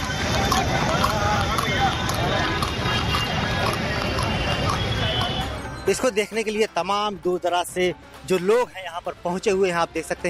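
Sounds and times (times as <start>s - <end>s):
horse-drawn cart wheels rumbling: 0.0s - 6.1s
voices murmuring: 0.0s - 6.4s
hooves of horses pulling racing carts clip-clopping outdoors: 0.0s - 6.7s
crowd hubbub: 0.0s - 10.2s
speech: 5.9s - 10.2s.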